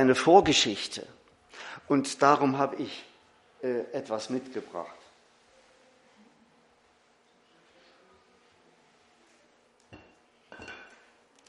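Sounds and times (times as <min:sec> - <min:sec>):
speech: 0:00.0 - 0:01.2, 0:01.9 - 0:05.0
bright glass clink with a brief ringing tone: 0:09.9 - 0:11.1
glass set down on a hard surface: 0:09.9 - 0:11.1.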